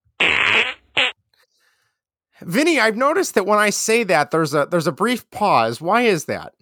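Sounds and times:
fart sound effect played from a soundboard button: 0.2 - 1.2
speech: 2.4 - 6.6.

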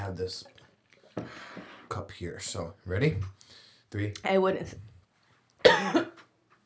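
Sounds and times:
speech: 0.1 - 0.6, 1.2 - 4.9, 5.7 - 6.2
harsh cough: 5.6 - 6.6.

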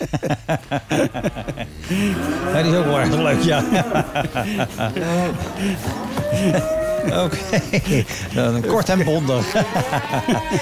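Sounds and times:
laughter: 0.0 - 10.6
speech: 0.0 - 10.6
several cows mooing: 1.1 - 7.8, 9.1 - 10.6.

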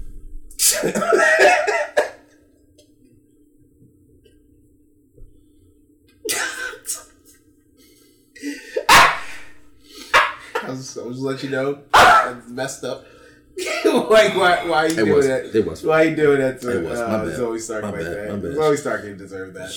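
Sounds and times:
faint steady hum: 0.0 - 19.7
speech: 0.8 - 1.3, 11.0 - 13.2, 14.0 - 19.7
dog barking: 8.9 - 9.5, 10.1 - 10.5, 11.9 - 12.4.

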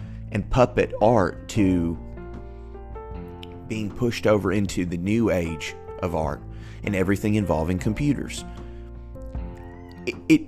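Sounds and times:
speech: 0.3 - 2.0, 3.7 - 8.6, 10.1 - 10.4
cat meowing: 9.6 - 10.2.

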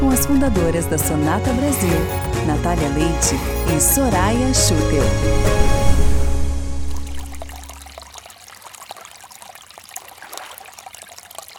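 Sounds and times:
speech: 0.2 - 5.8
water pouring and trickling: 5.5 - 11.5
water droplets: 6.9 - 11.5.

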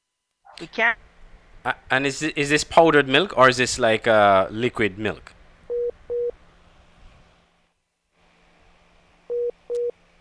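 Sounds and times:
speech: 0.6 - 5.4
telephone busy tone after a lost call connection: 5.7 - 6.3, 9.3 - 9.9.

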